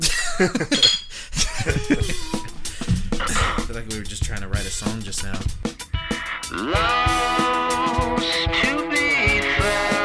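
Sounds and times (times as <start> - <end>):
people chuckling: 0.0 - 2.6, 3.2 - 3.8
speech: 0.4 - 1.0, 3.9 - 5.7, 6.5 - 9.9
drink glasses clinking in a toast: 0.7 - 1.1.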